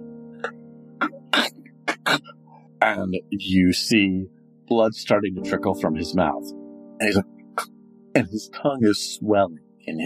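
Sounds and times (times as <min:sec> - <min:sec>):
voice imitating a man's wet gurgling cough: 0:00.4 - 0:02.4
speech: 0:02.1 - 0:10.0.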